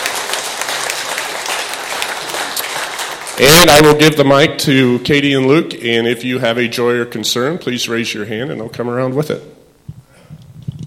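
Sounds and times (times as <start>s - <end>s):
audience applauding: 0.0s - 4.0s
speech: 3.4s - 9.5s.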